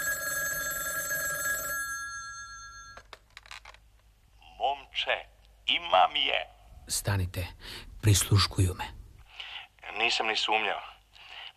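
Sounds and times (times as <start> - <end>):
telephone bell ringing with metallic trill: 0.0 - 3.1
speech: 5.0 - 9.0, 10.0 - 10.9.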